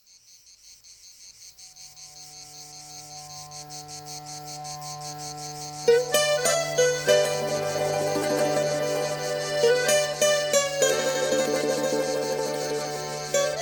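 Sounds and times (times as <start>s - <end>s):
cicadas chirring in a pulsing buzz: 0.0s - 13.6s
music with louder struck tones: 5.8s - 13.6s.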